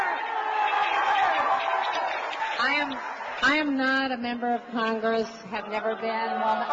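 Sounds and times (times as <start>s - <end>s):
large audience at a town hall on health care roaring and shouting: 0.0s - 3.8s, 5.6s - 6.7s
speech: 2.6s - 6.7s.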